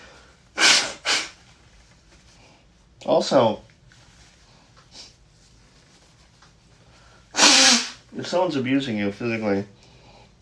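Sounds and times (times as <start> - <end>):
person blowing their nose: 0.6 - 1.5, 7.3 - 8.1
speech: 3.0 - 3.6, 8.3 - 9.8.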